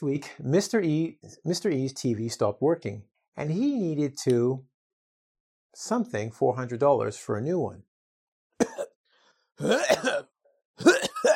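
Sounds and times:
speech: 0.0s - 4.7s, 5.8s - 7.9s, 9.6s - 11.0s
coughing and throat clearing: 8.6s - 9.0s, 9.6s - 11.3s.

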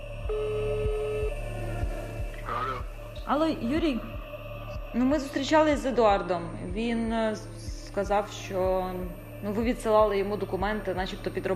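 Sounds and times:
low buzzing phone line hum: 0.2s - 1.9s
phone line ringing tone while calling a phone: 0.3s - 1.4s
speech: 3.3s - 4.1s, 4.9s - 11.5s.

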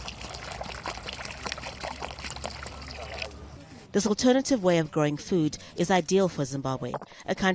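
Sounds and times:
water pouring into a buried clay pot in a garden in Chegutu, Zimbabwe: 0.0s - 3.4s
speech: 3.9s - 7.5s.

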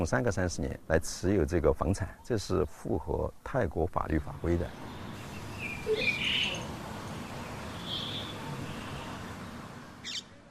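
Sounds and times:
speech: 0.0s - 5.0s
birds singing on a quiet slow morning: 4.0s - 10.4s.

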